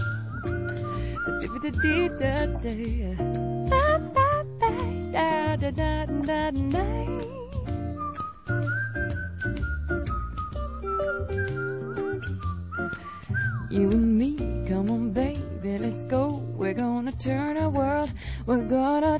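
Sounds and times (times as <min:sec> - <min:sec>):
person whistling a clear bright melody: 0:00.0 - 0:03.0, 0:07.1 - 0:14.6
instrumental musical accompaniment: 0:00.0 - 0:19.1.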